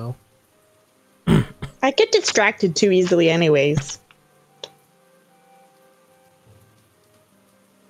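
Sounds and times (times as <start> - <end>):
speech: 0.0 - 0.3, 1.9 - 4.0
soft steady rain: 0.0 - 7.8.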